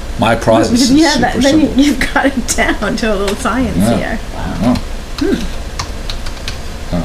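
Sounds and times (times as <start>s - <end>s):
speech: 0.2s - 5.5s
fingers typing on a computer keyboard: 5.8s - 6.6s.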